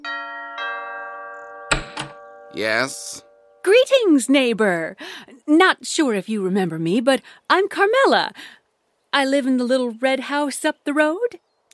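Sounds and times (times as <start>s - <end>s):
doorbell of a big gray house chiming two tones: 0.0s - 3.7s
speech: 2.5s - 11.7s.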